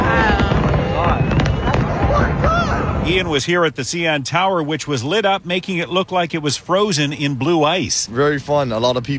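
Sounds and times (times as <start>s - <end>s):
fireworks bursting at an album release display: 0.0s - 3.3s
crowd of fans voices and cheering: 0.0s - 3.4s
speech: 3.1s - 9.1s.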